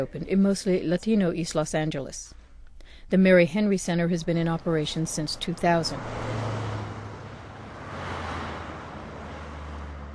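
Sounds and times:
speech: 0.0s - 2.4s, 3.1s - 6.5s
low engine rumble: 4.0s - 10.1s
traffic roaring down a city avenue: 4.3s - 10.1s.

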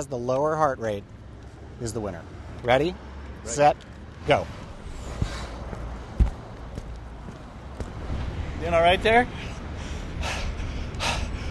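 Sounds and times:
speech: 0.0s - 1.2s, 1.8s - 5.2s, 8.6s - 9.5s
heavy breathing after walking a mile: 4.8s - 6.0s, 9.3s - 11.4s.

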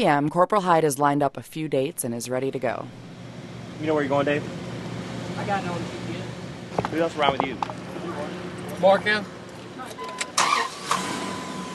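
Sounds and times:
speech: 0.0s - 3.1s, 3.8s - 4.7s, 5.3s - 6.0s, 6.9s - 7.8s, 8.8s - 10.0s
hum: 0.0s - 10.4s
car engine starting in an unmarked police car: 7.0s - 11.7s.

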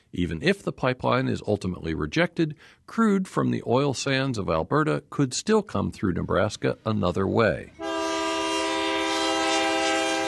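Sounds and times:
speech: 0.1s - 7.9s
coal train horn multi-note chord: 7.8s - 10.2s.

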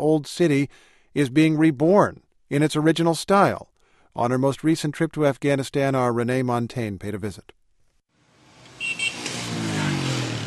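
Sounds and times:
speech: 0.0s - 7.6s
dense street traffic rumbling in Kabul's old city in Afghanistan: 8.3s - 10.4s
vehicle engine drone rising in pitch as it passes: 8.3s - 10.4s.

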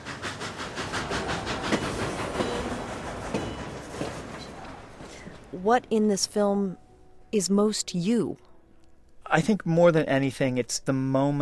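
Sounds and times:
rail cars clattering: 0.0s - 5.6s
train rumbling with a dense mechanical roar: 0.0s - 6.0s
speech: 5.6s - 8.5s, 9.3s - 11.4s.

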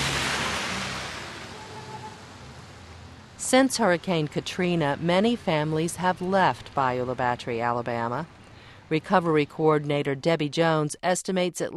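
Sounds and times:
storm water streaming through streets: 0.0s - 7.4s
speech: 3.4s - 11.7s.

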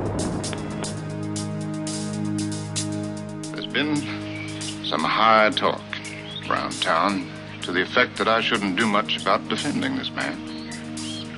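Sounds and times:
Delta II rocket engine roaring at liftoff: 0.0s - 2.4s
speech: 3.8s - 4.2s, 4.9s - 5.9s, 6.5s - 10.5s.

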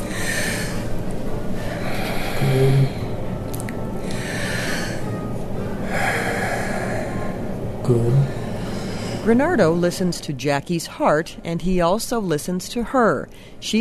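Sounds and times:
woman patient breathing deeply during a doctor's examination: 0.0s - 3.3s, 4.0s - 7.4s, 8.3s - 9.3s
speech: 2.5s - 3.0s, 9.3s - 13.7s.

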